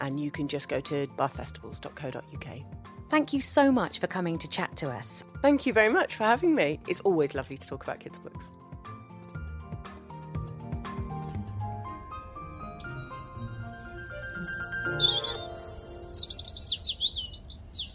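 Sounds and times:
speech: 0.0 - 8.7
soft low tonal background: 9.2 - 17.7
birds chirping and singing: 12.4 - 17.9.

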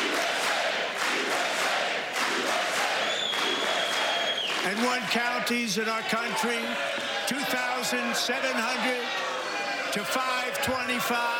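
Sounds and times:
large crowd booing and shouting in disapproval: 0.0 - 11.3
sharp whistles from a crowd: 3.0 - 4.6
speech: 4.7 - 9.3, 10.0 - 11.3.

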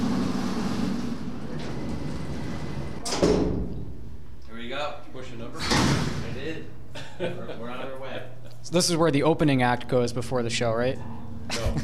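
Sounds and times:
freight elevator door sliding and closing with a heavy clunk: 0.0 - 4.0
steady low mechanical hum: 0.0 - 11.8
speech: 6.6 - 8.0, 8.6 - 11.8
laughter: 6.9 - 8.6, 11.5 - 11.8.

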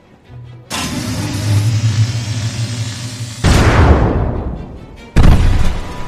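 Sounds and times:
sharp burst: 0.7 - 4.3
weapon charging up with a low humming drone: 0.7 - 4.3.

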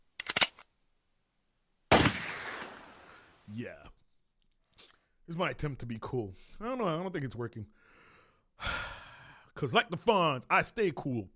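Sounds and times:
loud booming gunshot with echo: 1.9 - 3.2
gunshots: 1.9 - 3.4
speech: 3.5 - 4.0, 5.3 - 7.8, 9.6 - 11.3.

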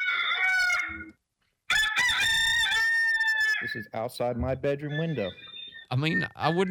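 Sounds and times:
rooster crowing: 0.0 - 1.1, 1.7 - 3.9
speech: 3.6 - 6.6.

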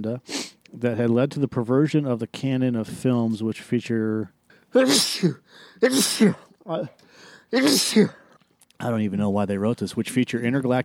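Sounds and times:
speech: 0.0 - 8.2, 8.8 - 10.8
person sneezing: 4.7 - 8.4
breathy breathing sounds: 5.4 - 5.9, 7.0 - 7.6.

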